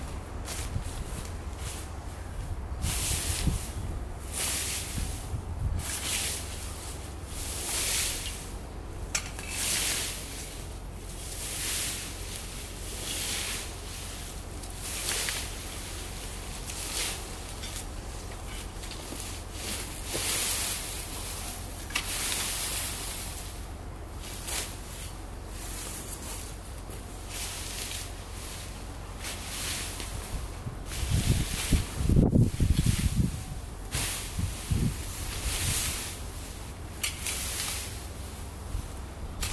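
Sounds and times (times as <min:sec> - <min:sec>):
low hum: 0:00.0 - 0:39.5
crisp snips of branches being pruned in a back garden: 0:37.0 - 0:38.0.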